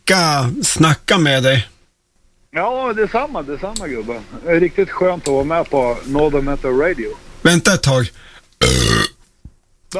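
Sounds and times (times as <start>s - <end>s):
speech: 0.1s - 1.7s, 2.5s - 9.0s
person burping: 8.6s - 9.2s.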